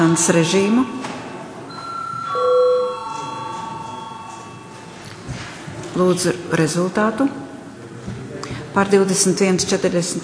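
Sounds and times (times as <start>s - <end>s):
speech: 0.0s - 1.1s, 6.0s - 7.4s, 8.8s - 10.2s
bell rung in a parliament chamber to call a vote: 0.3s - 5.2s.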